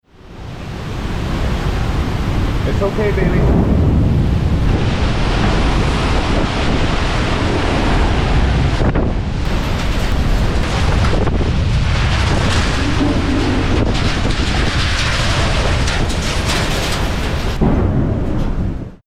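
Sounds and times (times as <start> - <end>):
howling wind from a derecho windstorm: 0.0 - 19.0
speech: 2.8 - 3.7.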